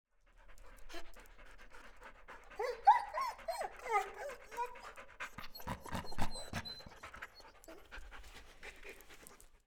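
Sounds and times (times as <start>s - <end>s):
dog growling and whining: 3.2s - 7.1s.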